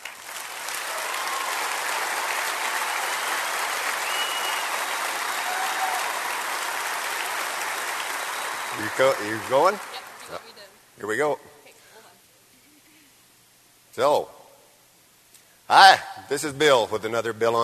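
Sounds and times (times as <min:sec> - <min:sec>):
audience of cattlemen applauding at a convention in Nashville Tennessee: 0:00.0 - 0:10.6
faint whoops from cattlemen audience: 0:00.8 - 0:06.4
speech: 0:08.8 - 0:11.5, 0:14.0 - 0:14.4, 0:15.7 - 0:17.6.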